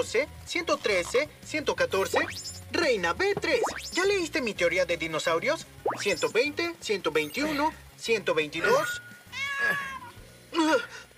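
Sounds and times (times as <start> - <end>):
speech: 0.0 - 9.9, 10.6 - 11.1
kitten meowing: 8.6 - 10.2.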